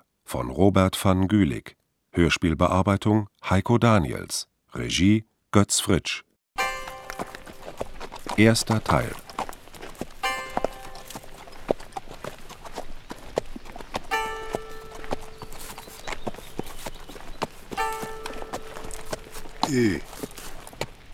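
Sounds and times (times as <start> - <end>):
speech: 0.3 - 6.3, 8.3 - 9.2, 19.7 - 20.2
hooves of a ridden horse clip-clopping in drizzle: 6.6 - 21.1.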